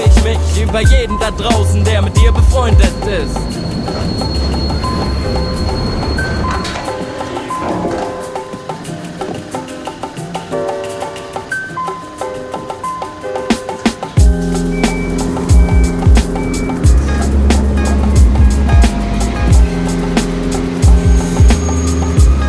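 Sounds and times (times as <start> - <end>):
train pulling in, steady heavy rumble: 0.0 - 10.5, 14.2 - 22.4
speech: 0.7 - 4.3
train pulling in, wheels squealing: 2.5 - 8.5, 21.2 - 22.4.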